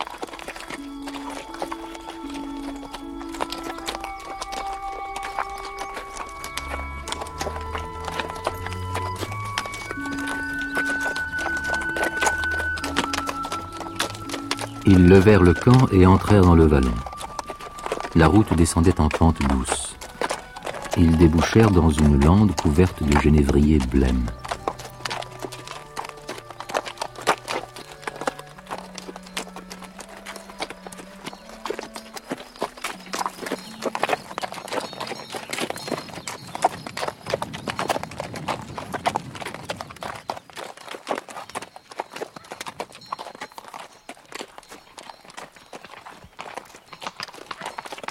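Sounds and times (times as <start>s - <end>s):
horse hooves clip-clopping: 0.0s - 48.0s
soft musical line: 0.4s - 34.2s
speech: 14.9s - 17.0s, 18.2s - 19.8s, 21.0s - 24.4s.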